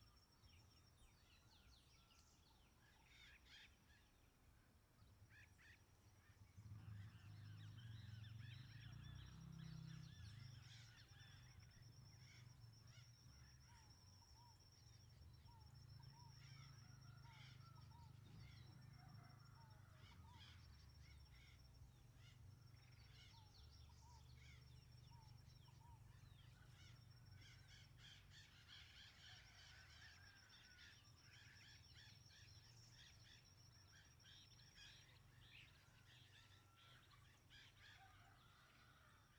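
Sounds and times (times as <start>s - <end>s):
birds in a rural setting: 0.6s - 39.3s
distant motorcycle passing in a rural setting: 6.5s - 10.7s.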